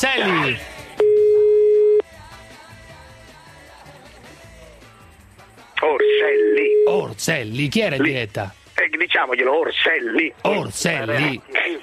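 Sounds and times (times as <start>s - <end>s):
speech: 0.0s - 0.8s, 5.8s - 11.8s
telephone busy tone after a call is hung up: 1.0s - 2.1s, 6.0s - 7.0s.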